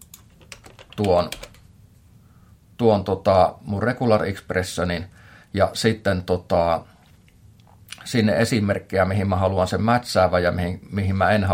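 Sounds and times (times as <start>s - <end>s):
typing a regular expression on a computer keyboard: 0.0s - 1.7s
speech: 1.0s - 1.4s, 2.8s - 6.9s, 8.0s - 11.5s.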